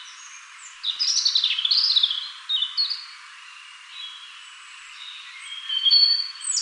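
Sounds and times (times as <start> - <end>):
European robin (Erithacus rubecula) singing: 0.0 - 6.5.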